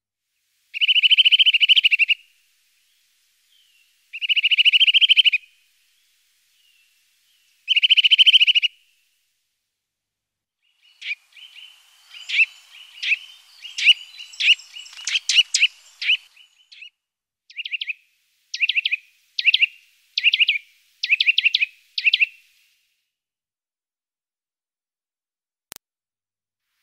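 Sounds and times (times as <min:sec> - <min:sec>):
Eurasian nuthatch sharp chirps: 0:00.8 - 0:02.2, 0:03.5 - 0:05.4, 0:06.6 - 0:08.7, 0:10.6 - 0:16.9, 0:17.5 - 0:18.0, 0:18.6 - 0:22.4
Eurasian nuthatch trilling: 0:00.8 - 0:02.2, 0:04.2 - 0:05.4, 0:07.7 - 0:08.7, 0:10.8 - 0:16.9, 0:18.6 - 0:22.3.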